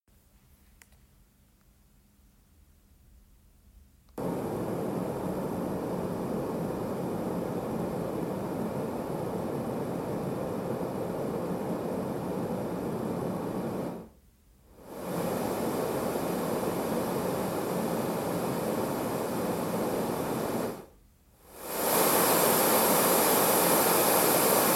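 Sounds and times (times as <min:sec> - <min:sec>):
white noise from a Lectrofan Micro 2: 0:00.1 - 0:24.7.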